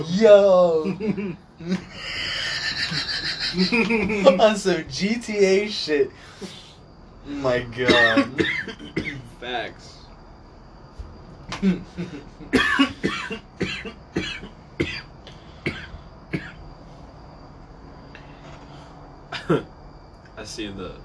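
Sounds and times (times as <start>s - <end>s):
speech: 0.0s - 2.1s, 3.5s - 6.6s, 7.2s - 10.0s, 11.5s - 14.0s, 19.5s - 19.7s, 20.4s - 21.0s
laughter: 0.8s - 4.6s
person coughing in a loud fit: 7.8s - 9.3s, 11.6s - 16.6s, 19.4s - 19.6s.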